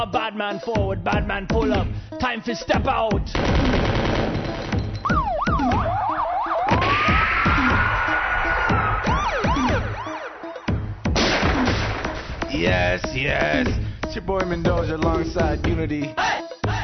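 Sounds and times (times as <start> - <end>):
speech: 0.0 - 4.6, 12.6 - 16.4
heavy driving beat: 0.7 - 2.0, 2.7 - 16.8
sharp percussive bursts: 3.3 - 6.0, 6.6 - 15.8
wailing passing siren sound effect: 5.0 - 11.0.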